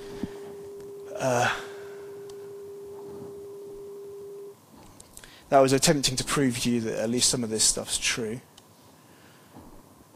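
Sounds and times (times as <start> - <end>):
short breathy vocal noise: 0.0 - 2.3
ring-modulated 200 hertz sine wave tone: 0.0 - 4.6
speech: 1.2 - 1.7, 5.5 - 8.5.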